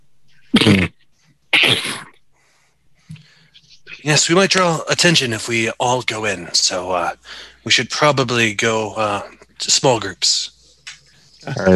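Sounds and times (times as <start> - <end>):
person sneezing: 0.5 - 0.9, 1.5 - 2.2
speech: 0.5 - 0.9, 4.0 - 10.5, 11.4 - 11.7.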